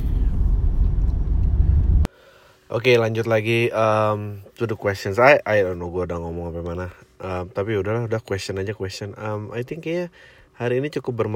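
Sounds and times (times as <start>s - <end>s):
car driving on a toll road, engine and road noise: 0.0s - 2.1s
speech: 2.7s - 11.3s.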